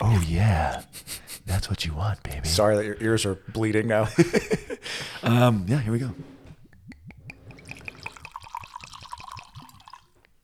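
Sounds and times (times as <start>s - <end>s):
speech: 0.1s - 6.4s
laughter: 4.0s - 5.3s
drink glugging from a bottle: 6.8s - 10.1s
liquid splashing into a glass: 7.3s - 10.2s.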